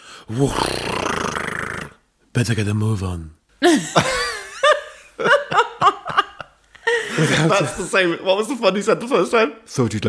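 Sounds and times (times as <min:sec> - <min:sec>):
speech: 0:00.3 - 0:01.0, 0:02.4 - 0:04.2, 0:07.2 - 0:10.0
laughter: 0:03.6 - 0:07.9
woman gasping: 0:06.8 - 0:07.3.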